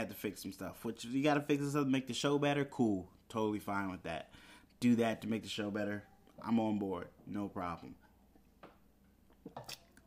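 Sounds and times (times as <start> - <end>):
speech: 0.0 - 8.0, 9.5 - 9.8
person drinking water, gulping and swallowing: 9.3 - 10.0.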